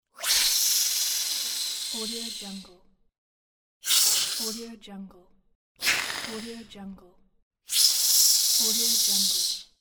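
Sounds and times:
spider queen hiss: 0.2s - 2.5s, 3.8s - 4.6s, 5.8s - 6.6s, 7.7s - 9.6s.

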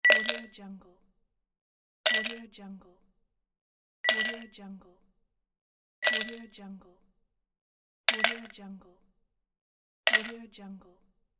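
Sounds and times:
ice cubes in glass: 0.1s - 0.5s, 6.0s - 6.4s, 8.1s - 8.6s, 10.1s - 10.4s.

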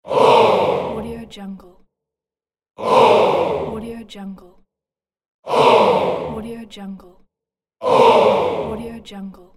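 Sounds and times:
audience groaning in disappointment: 0.1s - 1.0s, 2.8s - 3.8s, 5.5s - 6.4s.

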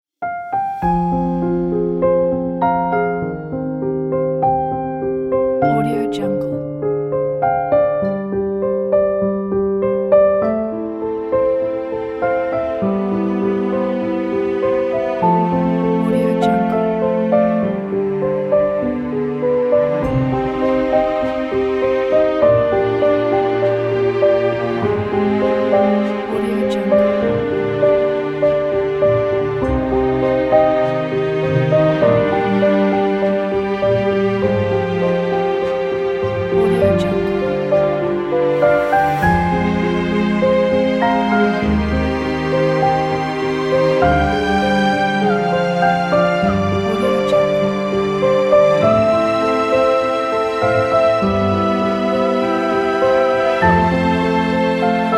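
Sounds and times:
emotional film score piano: 0.2s - 55.1s
emotional film score strings: 0.8s - 55.1s.

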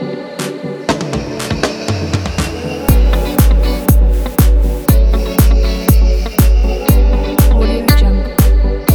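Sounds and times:
sweet dance drum kit: 0.4s - 8.9s.

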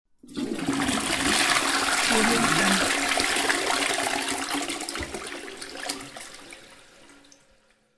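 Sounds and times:
toilet flush: 0.2s - 7.9s.

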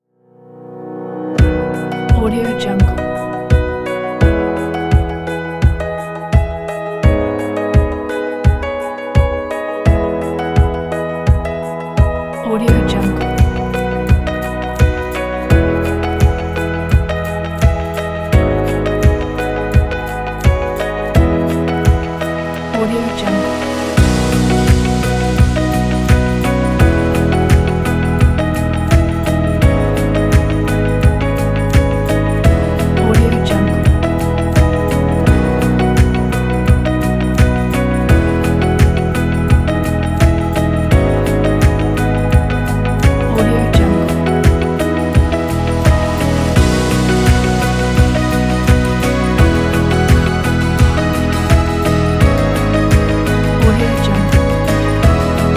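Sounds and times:
slow inspirational corporate music: 0.0s - 55.5s.

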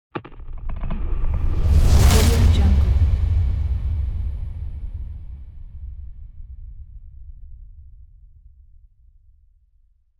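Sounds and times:
explosion: 0.2s - 8.6s.

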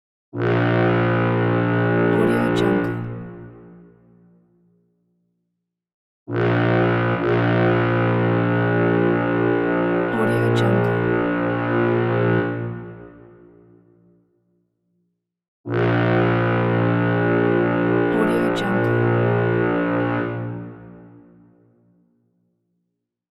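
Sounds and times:
boat horn: 0.4s - 4.2s, 6.3s - 14.0s, 15.7s - 21.8s.

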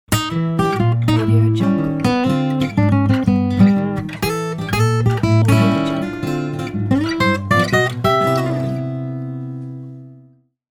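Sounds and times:
jazz guitar logo jingle: 0.1s - 10.2s.

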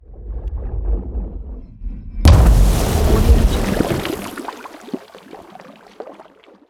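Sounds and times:
explosive water hit: 2.3s - 6.2s.

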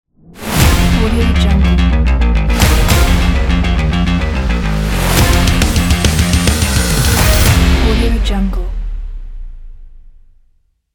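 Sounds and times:
bass guitar rock logo: 0.5s - 8.8s.

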